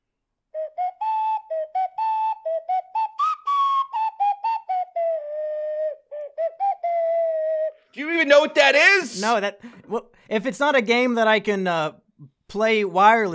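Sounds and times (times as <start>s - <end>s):
ocarina playing a short bouncy game-style melody: 0.6s - 9.8s
speech: 8.0s - 13.3s.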